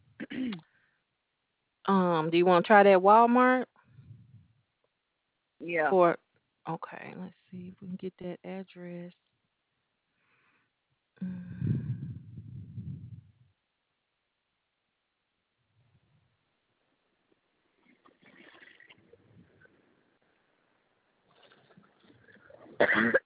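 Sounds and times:
person coughing: 0:00.2 - 0:00.6, 0:22.8 - 0:23.2
speech: 0:01.9 - 0:03.7, 0:05.6 - 0:09.3, 0:11.2 - 0:11.7, 0:22.8 - 0:23.2.

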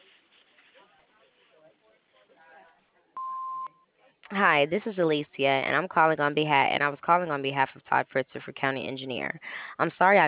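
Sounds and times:
voicemail answering machine beep: 0:03.2 - 0:03.8
speech: 0:04.3 - 0:10.2.

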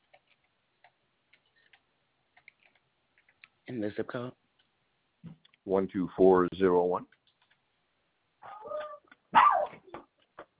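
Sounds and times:
speech: 0:03.7 - 0:04.4, 0:05.7 - 0:07.2
dog barking: 0:09.3 - 0:09.8.

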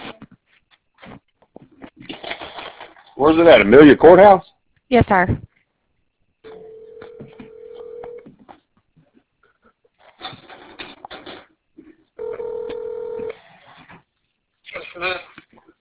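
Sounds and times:
speech: 0:03.2 - 0:05.4
long steady electronic telephone tones as a call is placed: 0:06.5 - 0:08.3, 0:12.2 - 0:13.3
phone line noise: 0:06.5 - 0:08.3, 0:12.2 - 0:13.3.

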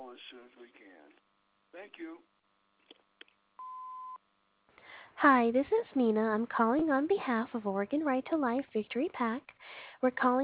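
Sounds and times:
speech: 0:00.2 - 0:02.4, 0:05.2 - 0:10.4
answering machine message tone beep: 0:03.6 - 0:04.2.

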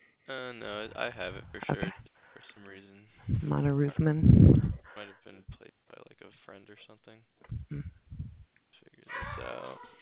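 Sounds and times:
speech: 0:00.3 - 0:05.4, 0:06.5 - 0:07.9, 0:09.2 - 0:09.9
person speaking quietly: 0:00.3 - 0:09.8
dog barking or growling: 0:09.1 - 0:09.9.

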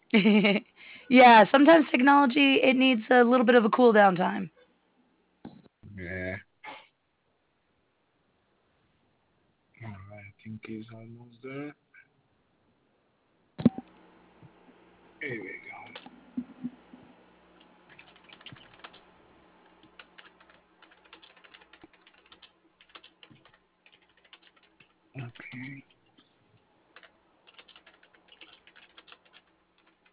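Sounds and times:
low hum: 0:00.0 - 0:30.1
speech: 0:00.1 - 0:04.6, 0:06.0 - 0:06.4, 0:09.8 - 0:11.8, 0:15.2 - 0:15.6
typing on a computer keyboard: 0:17.9 - 0:19.0, 0:19.8 - 0:25.9, 0:27.0 - 0:30.1.

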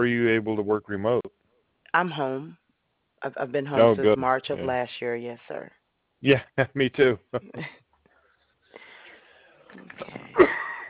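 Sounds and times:
speech: 0:00.0 - 0:02.6, 0:03.2 - 0:07.8, 0:09.7 - 0:10.8
wheezy inhalation: 0:08.1 - 0:09.7
single sharp cough with telephone-like tone: 0:10.0 - 0:10.8.

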